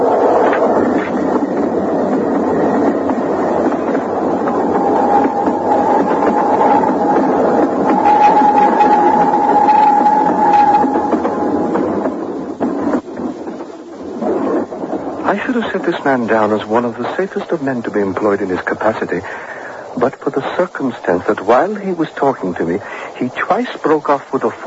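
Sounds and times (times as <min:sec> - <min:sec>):
train roaring past: 0:00.0 - 0:24.6
long high-pitched squeal or whistle: 0:04.0 - 0:12.4
speech: 0:15.8 - 0:24.6.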